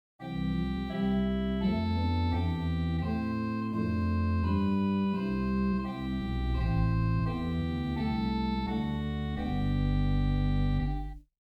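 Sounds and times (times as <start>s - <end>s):
pipe organ with Swell Erzahler, Great Schalmei and Pedal Rohrflute stops: 0.2s - 11.2s.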